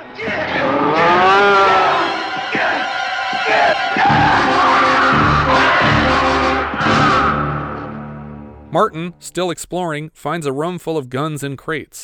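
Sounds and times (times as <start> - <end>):
bull bellowing in a concrete maze: 0.0 - 7.9
speech: 8.7 - 12.0.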